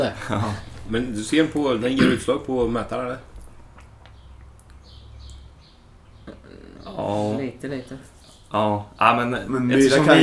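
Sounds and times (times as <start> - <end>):
speech: 0.0 - 3.3, 6.8 - 10.2
bird chirping and trilling outside an open window: 3.7 - 7.0.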